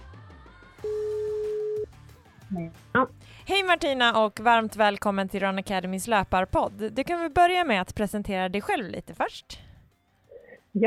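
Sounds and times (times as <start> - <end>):
telephone ringing tone while a call is being placed: 0.8 - 1.8
speech: 2.5 - 9.6.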